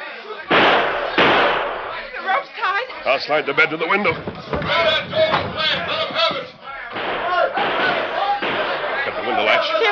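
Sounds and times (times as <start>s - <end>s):
booming gunshots fired through a door: 0.5s - 2.0s, 4.7s - 9.4s
speech: 3.1s - 7.1s, 9.4s - 9.8s.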